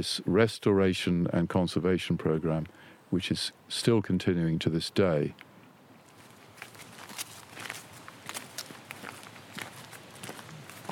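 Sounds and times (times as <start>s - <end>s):
speech: 0.0s - 5.5s
faint outdoor noise: 0.0s - 10.9s
footsteps walking down a garden path in a landscape garden: 6.0s - 10.9s.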